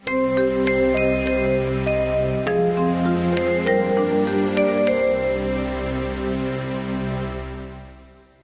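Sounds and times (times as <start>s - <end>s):
game level lost jingle: 0.0s - 6.6s.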